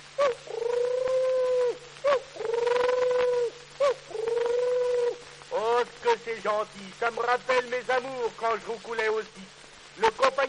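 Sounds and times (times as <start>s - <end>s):
voice imitating turtle dove cooing: 0.1s - 5.6s
speech: 6.4s - 10.4s.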